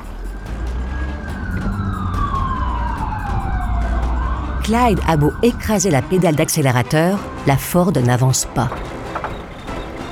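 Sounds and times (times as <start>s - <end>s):
police patrol car engine and road noise while speeding off: 0.0s - 7.5s, 8.7s - 10.1s
police patrol car siren wailing with downward sliding tone: 0.0s - 7.6s
speech: 4.7s - 8.9s.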